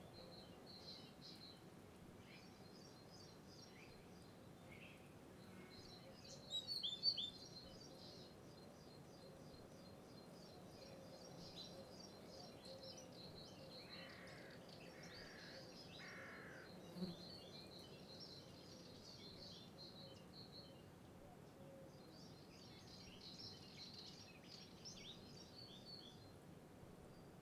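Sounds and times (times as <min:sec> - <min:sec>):
low steady background hiss: 0:00.0 - 0:27.3
crow cawing: 0:15.2 - 0:16.7.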